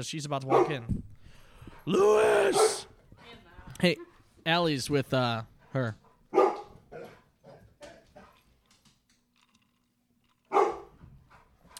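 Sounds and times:
speech: 0:00.0 - 0:01.1, 0:01.8 - 0:02.9, 0:03.8 - 0:06.0
dog barking: 0:00.5 - 0:00.9, 0:02.3 - 0:02.9, 0:06.3 - 0:08.4, 0:10.5 - 0:11.0.

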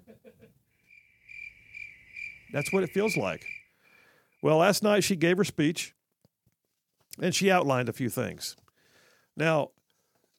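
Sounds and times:
crickets chirping: 0:00.8 - 0:04.5
speech: 0:02.5 - 0:03.6, 0:04.4 - 0:06.0, 0:07.2 - 0:08.6, 0:09.4 - 0:09.8.

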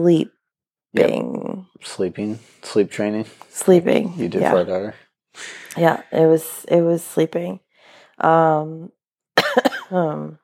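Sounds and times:
speech: 0:00.0 - 0:07.6, 0:08.2 - 0:09.0, 0:09.6 - 0:10.4
person with a respiratory illness coughing: 0:09.4 - 0:10.0.

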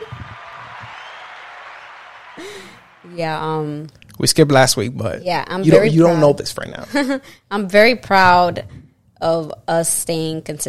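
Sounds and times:
many hands clapping in a round of applause: 0:00.0 - 0:03.1
speech: 0:02.4 - 0:10.6.

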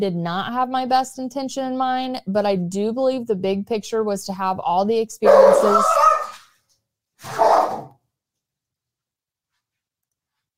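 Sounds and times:
speech: 0:00.0 - 0:06.1
dogs snarling and growling while fighting over food: 0:05.3 - 0:06.4, 0:07.2 - 0:07.9.

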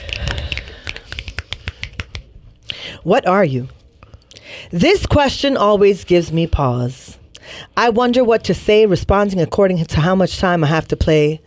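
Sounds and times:
several people snapping fingers as a poem reading begins: 0:00.0 - 0:02.3
speech: 0:03.0 - 0:03.8, 0:04.7 - 0:07.1, 0:07.7 - 0:11.4.

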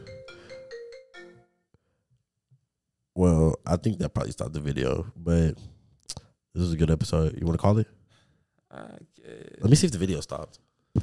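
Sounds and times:
phone ringtone of bright stepped electronic tones: 0:00.0 - 0:01.6
speech: 0:03.2 - 0:05.8, 0:06.6 - 0:08.0, 0:08.7 - 0:11.0.

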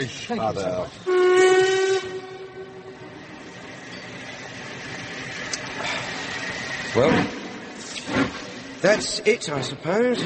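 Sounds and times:
speech: 0:00.0 - 0:01.6, 0:06.9 - 0:07.4, 0:08.8 - 0:10.2
train rumbling and hissing while pulling away: 0:00.0 - 0:10.2
train whistle: 0:01.0 - 0:03.4.

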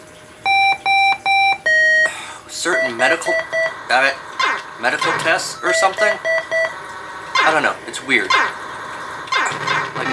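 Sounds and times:
video game electronic beeping tone: 0:00.5 - 0:03.8, 0:05.5 - 0:06.7
speech: 0:02.6 - 0:06.6, 0:07.4 - 0:08.6.

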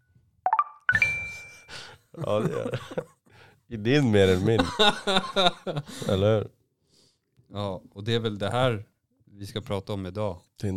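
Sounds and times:
phone app notification chime: 0:00.5 - 0:01.7
laughter: 0:02.2 - 0:03.1, 0:04.3 - 0:06.1
speech: 0:02.2 - 0:06.6, 0:07.5 - 0:10.7.

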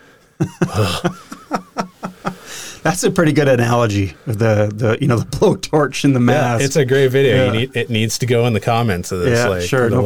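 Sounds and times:
speech: 0:00.4 - 0:01.4, 0:02.8 - 0:10.0
harsh rasping hacking cough: 0:00.4 - 0:01.5
laughter: 0:00.4 - 0:02.8.

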